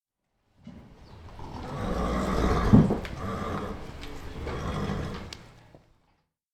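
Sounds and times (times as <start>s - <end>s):
horse nickering: 1.4s - 5.4s.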